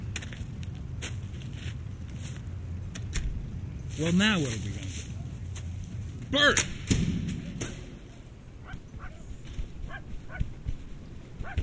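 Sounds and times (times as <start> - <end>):
steady low rumbling background: 0.0 - 11.6
speech: 4.0 - 4.8, 6.3 - 6.7
dog yipping: 8.6 - 10.5, 11.4 - 11.6.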